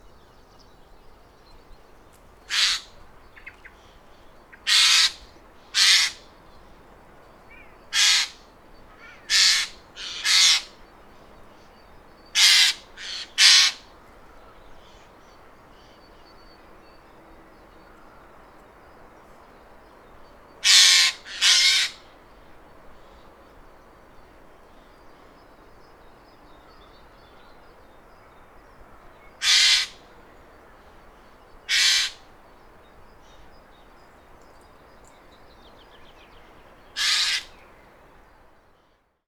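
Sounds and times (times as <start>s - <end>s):
Eurasian jay Garrulus glandarius calling: 2.5s - 2.9s, 4.6s - 6.2s, 7.9s - 8.4s, 9.0s - 10.7s, 12.4s - 13.8s, 20.6s - 22.0s, 29.4s - 30.0s, 31.7s - 32.2s, 37.0s - 37.6s.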